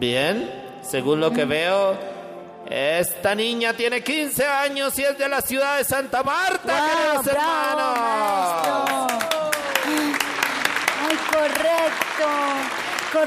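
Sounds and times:
speech: 0:00.0 - 0:09.3, 0:11.4 - 0:13.2
audience applause: 0:06.7 - 0:13.2
crowd cheering and whooping: 0:07.8 - 0:10.7.

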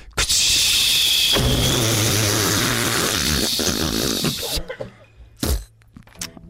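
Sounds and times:
loud buzzy fart: 0:00.2 - 0:04.7, 0:05.4 - 0:05.7.

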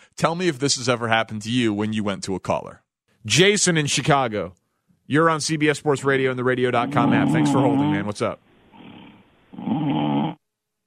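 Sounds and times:
speech: 0:00.2 - 0:08.5, 0:09.6 - 0:10.4
man snoring over a telephone line: 0:06.9 - 0:08.1, 0:08.8 - 0:10.4.

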